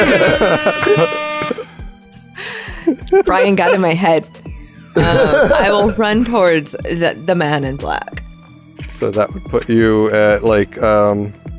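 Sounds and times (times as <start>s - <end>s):
speech: 0.0s - 1.2s, 3.1s - 4.4s, 5.0s - 8.2s, 8.9s - 11.4s
laughter: 0.0s - 1.7s, 2.6s - 4.1s, 5.0s - 6.2s
voice imitating a buzzer: 0.2s - 1.6s.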